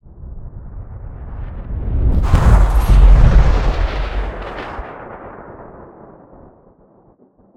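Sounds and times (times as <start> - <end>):
designed explosion whoosh: 1.6 - 6.2.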